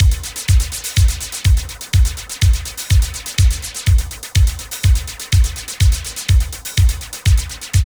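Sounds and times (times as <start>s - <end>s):
industrial techno loop: 0.0s - 7.8s.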